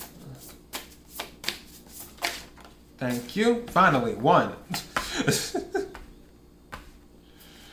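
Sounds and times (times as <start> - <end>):
tarot cards being shuffled: 0.0 - 3.3
speech: 3.0 - 5.6.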